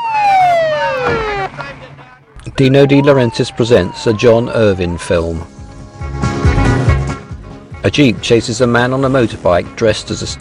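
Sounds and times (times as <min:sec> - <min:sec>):
ambulance siren wailing outside in the dark: 0:00.0 - 0:01.6, 0:02.4 - 0:05.7
speech: 0:02.5 - 0:05.6, 0:07.8 - 0:10.4.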